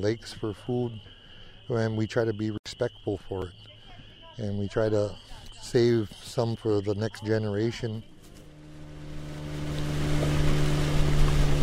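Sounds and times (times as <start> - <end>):
speech: 0.0 - 3.7, 4.4 - 8.1
motorboat engine droning on a lake as the boat slows: 7.2 - 11.6
water wash on a lake: 8.6 - 11.6.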